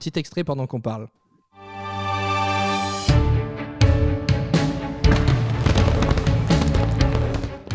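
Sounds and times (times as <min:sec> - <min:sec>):
speech: 0:00.0 - 0:01.2
instrumental show soundtrack with sustained orchestral chord: 0:01.6 - 0:07.7
fireworks bursting with sharp booms and crackles: 0:05.1 - 0:07.7.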